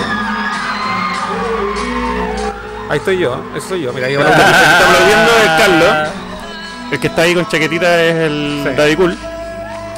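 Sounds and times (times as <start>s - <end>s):
concert crowd screaming and whooping wildly: 0.0s - 3.2s, 4.2s - 6.4s
speech: 2.9s - 6.2s, 6.9s - 9.3s
laughter: 4.2s - 6.2s.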